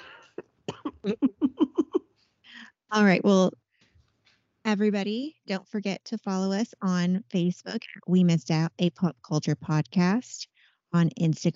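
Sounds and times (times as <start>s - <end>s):
short hoarse coughs: 0.0s - 1.4s
speech: 1.0s - 1.3s, 2.9s - 3.6s, 4.7s - 11.5s.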